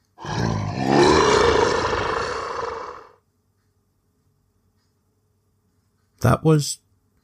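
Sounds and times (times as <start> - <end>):
terrifying roar: 0.2 - 3.2.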